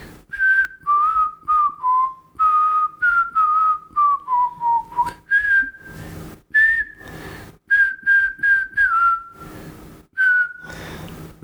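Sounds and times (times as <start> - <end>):
person whistling a medley of pop song and film theme song: 0.3 - 5.9, 6.5 - 7.1, 7.7 - 9.4, 10.2 - 10.7.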